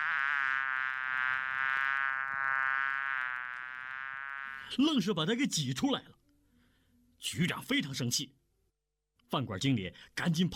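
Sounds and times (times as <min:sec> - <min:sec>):
swarm of flies buzzing in a restaurant toilet: 0:00.0 - 0:04.7
speech: 0:04.7 - 0:06.2, 0:07.3 - 0:08.4, 0:09.3 - 0:10.5.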